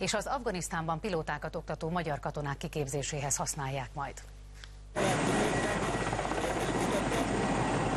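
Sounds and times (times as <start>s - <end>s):
speech: 0.0s - 4.4s
Mi-8 military transport helicopter landing: 5.0s - 7.9s.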